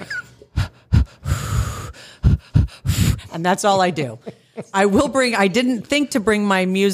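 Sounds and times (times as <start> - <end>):
person demonstrating a rhythmic breathing technique used while cycling uphill: 0.5 - 3.4
speech: 3.4 - 6.9.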